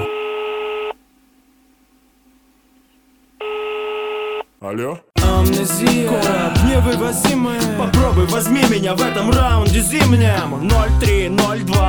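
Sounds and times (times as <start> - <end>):
long steady electronic telephone tone while a call is placed: 0.0 - 4.5
speech: 4.6 - 11.8.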